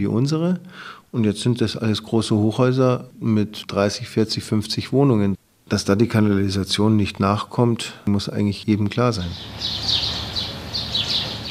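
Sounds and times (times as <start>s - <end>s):
speech: 0.0s - 10.0s
birds chirping in a garden of a seamen's home in Alexandria Egypt: 9.2s - 11.5s.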